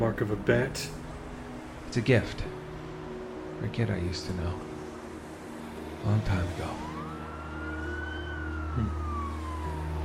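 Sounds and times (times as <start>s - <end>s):
speech: 0.0s - 1.0s, 1.9s - 2.6s, 3.6s - 4.7s, 6.0s - 6.9s
low rumble of engine and traffic noise: 0.0s - 10.0s
emergency vehicle siren wailing: 6.0s - 10.0s.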